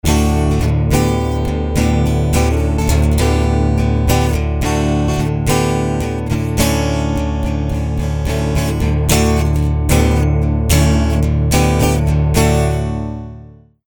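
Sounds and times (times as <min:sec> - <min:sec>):
guitar in dropped D tuning: 0:00.0 - 0:13.8.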